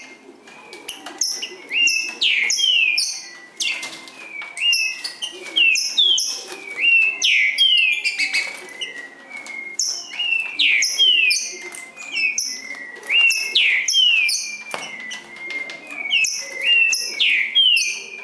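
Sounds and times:
Green-winged saltator singing in the forest: 0:00.9 - 0:18.2.

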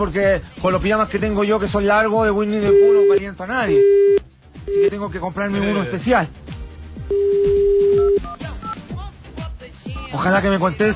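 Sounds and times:
speech: 0:00.0 - 0:06.5, 0:10.1 - 0:10.9
steady telephone dialing tone: 0:02.6 - 0:04.9, 0:07.1 - 0:08.8
telephone keypad tones: 0:02.7 - 0:03.2, 0:07.1 - 0:08.8.

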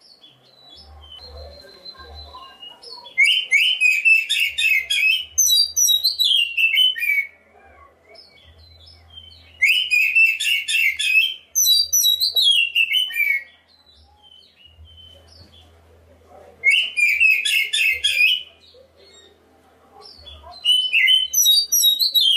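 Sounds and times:
faint low hum: 0:00.0 - 0:22.0
black-breasted Oriental magpie-robin song: 0:00.7 - 0:07.4, 0:08.2 - 0:15.5, 0:16.7 - 0:18.5, 0:20.2 - 0:22.3.

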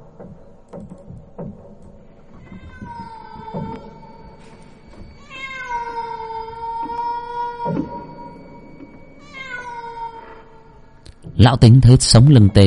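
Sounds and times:
soft thumps and clicks: 0:00.0 - 0:05.2
cat meowing eerily at night outside the door on the porch: 0:02.4 - 0:04.4, 0:05.2 - 0:08.4, 0:09.2 - 0:10.9
speech: 0:11.4 - 0:12.6.

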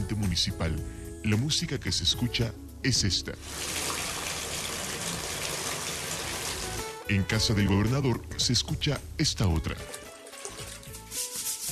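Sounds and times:
speech: 0:00.3 - 0:04.0, 0:07.1 - 0:10.0
running water at a house: 0:03.4 - 0:07.1, 0:09.6 - 0:11.6.

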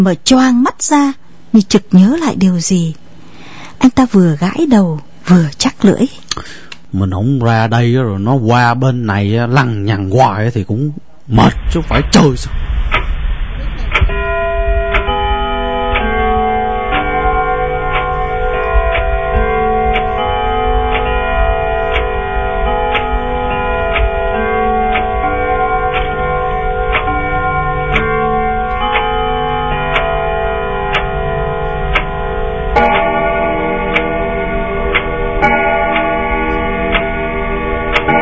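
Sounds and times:
speech: 0:00.0 - 0:03.0, 0:03.8 - 0:12.7
house clock striking eleven in metallic chimes: 0:14.0 - 0:38.2.

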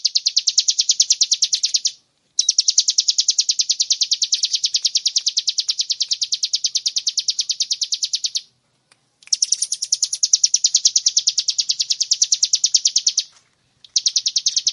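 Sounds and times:
bar-winged prinia singing high clipped chip notes: 0:00.0 - 0:08.5, 0:09.2 - 0:14.7.

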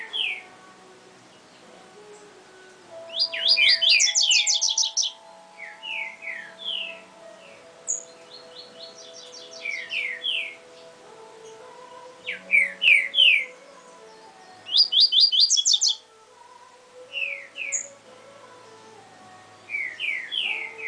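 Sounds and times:
double-collared seedeater song with slurred whistles and sharp high notes: 0:03.0 - 0:10.6, 0:12.2 - 0:13.6, 0:14.6 - 0:16.0, 0:17.1 - 0:18.0, 0:19.7 - 0:20.8.

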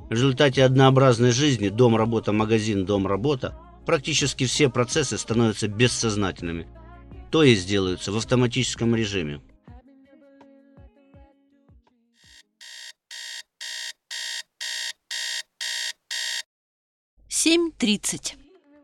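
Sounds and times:
speech: 0:00.1 - 0:09.5, 0:17.4 - 0:18.4
beeping alarm clock going off at waking: 0:12.3 - 0:16.5.

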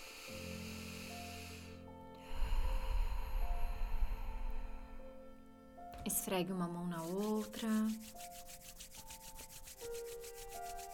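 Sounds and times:
person taking a long deep noisy breath during a guided relaxation exercise: 0:00.0 - 0:05.4
soft sustained musical tones: 0:00.0 - 0:10.9
speech: 0:06.0 - 0:08.5.

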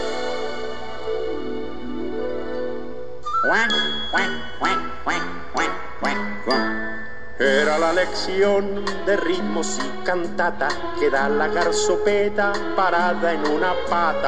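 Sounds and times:
children's song about ducks singing at a lagoon: 0:00.0 - 0:14.2
speech: 0:03.4 - 0:14.2
duck-like quacks: 0:04.1 - 0:06.4.

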